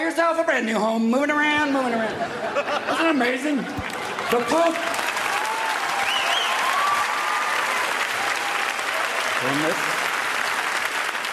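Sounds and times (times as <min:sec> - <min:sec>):
speech: 0:00.2 - 0:05.0, 0:09.4 - 0:09.9
laughter: 0:01.9 - 0:05.0
large crowd audience applause: 0:03.8 - 0:11.3
faint whistles from audience: 0:06.0 - 0:06.6.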